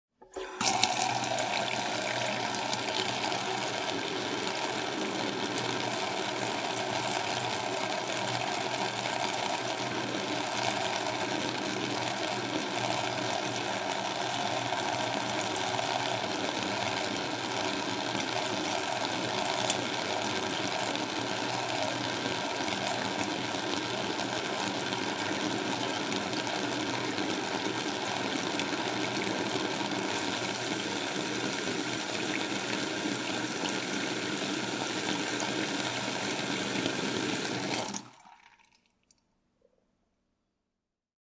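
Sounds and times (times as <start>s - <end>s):
kitchen faucet turned on, running and turned off: 0.2s - 39.0s.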